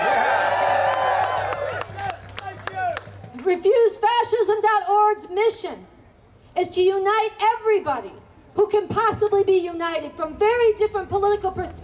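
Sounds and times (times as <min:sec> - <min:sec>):
crowd cheering and whooping: 0:00.0 - 0:03.0
people clapping: 0:00.0 - 0:03.5
speech: 0:04.5 - 0:05.9, 0:06.6 - 0:11.8.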